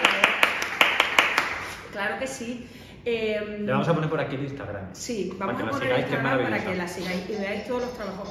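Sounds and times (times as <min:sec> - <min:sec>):
applause claps: 0:00.0 - 0:01.8
speech: 0:02.0 - 0:08.2.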